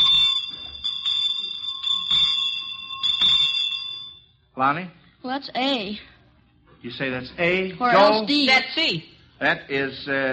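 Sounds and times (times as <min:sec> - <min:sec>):
bright street handbell ringing at Christmas time: 0:00.0 - 0:04.3
speech: 0:04.6 - 0:06.1, 0:06.8 - 0:10.3.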